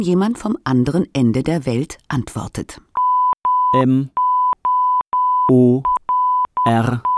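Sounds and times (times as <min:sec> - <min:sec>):
speech: 0:00.0 - 0:02.9, 0:03.7 - 0:04.2, 0:05.5 - 0:06.0, 0:06.6 - 0:07.1
high-pitched Morse code tone keying on and off: 0:03.0 - 0:07.1.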